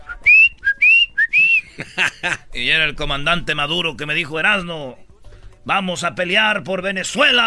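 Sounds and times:
person whistling like a little bird: 0.0s - 1.7s
laughter: 1.5s - 2.6s
speech: 2.6s - 7.4s.

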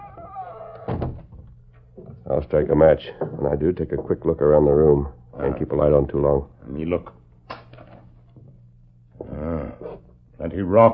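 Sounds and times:
door swinging shut: 0.0s - 2.2s
speech: 2.3s - 7.2s, 10.6s - 10.9s.

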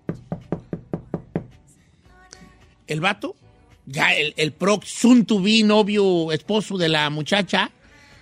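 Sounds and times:
firm knocking on an apartment door: 0.0s - 1.6s
speech: 2.9s - 7.8s.

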